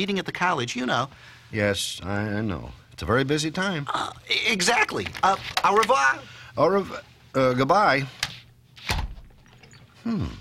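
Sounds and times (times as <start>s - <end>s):
speech: 0.0s - 8.3s, 10.0s - 10.3s
door slamming shut: 8.8s - 9.4s.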